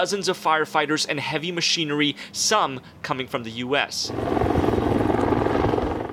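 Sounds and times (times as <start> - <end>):
speech: 0.0 - 4.8
firefighting helicopter flying overhead with thumping rotor and engine roar: 4.0 - 6.1.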